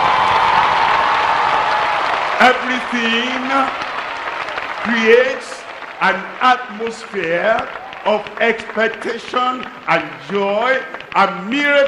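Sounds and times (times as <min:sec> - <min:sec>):
audience applauding at a religious gathering: 0:00.0 - 0:11.8
speech: 0:02.4 - 0:03.8, 0:04.8 - 0:11.8.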